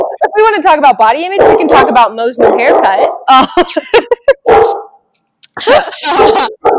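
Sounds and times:
speech: 0.4 - 4.1, 5.6 - 6.7
dog barking at a delivery man: 1.3 - 3.3, 4.4 - 5.0, 6.0 - 6.7
laughter: 3.3 - 4.7, 5.4 - 6.6.

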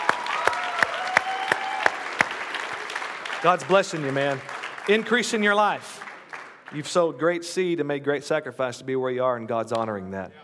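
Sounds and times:
audience clapping at a church service: 0.0 - 7.4
speech: 3.4 - 6.0, 6.7 - 10.4.

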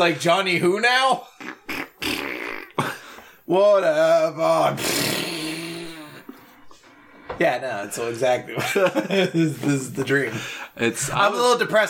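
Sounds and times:
speech: 0.0 - 1.6, 3.5 - 5.1, 7.4 - 11.8
loud buzzy farts: 1.7 - 2.8, 4.8 - 6.2
laughter: 8.4 - 10.6.

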